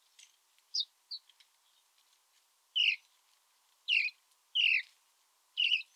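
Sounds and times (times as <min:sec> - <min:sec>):
house sparrow (Passer domesticus) chirping: 0:02.8 - 0:03.0, 0:03.9 - 0:04.8, 0:05.6 - 0:05.9.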